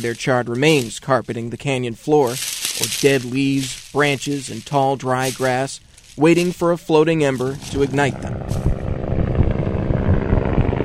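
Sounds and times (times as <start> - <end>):
speech: 0.0 - 8.6
helicopters roaring overhead over fire lines in a canyon: 7.0 - 10.8.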